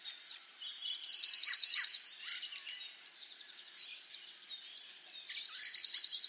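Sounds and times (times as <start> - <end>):
Eurasian blue tit Cyanistes caeruleus singing: 0.1 - 2.8, 4.0 - 6.2.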